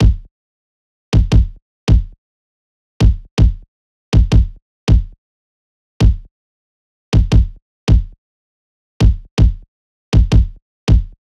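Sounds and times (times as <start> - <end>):
pop kick drum loop: 0.0 - 0.3, 1.2 - 2.2, 3.0 - 3.6, 4.2 - 5.2, 6.0 - 6.3, 7.2 - 8.2, 9.0 - 9.6, 10.2 - 11.2.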